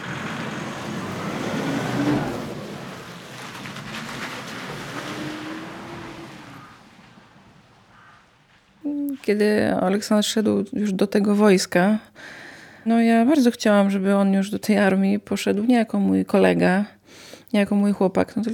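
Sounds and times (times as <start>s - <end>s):
car engine rumbling as the car drives out of a garage: 0.0s - 8.8s
road noise: 0.0s - 9.2s
speech: 9.3s - 18.5s.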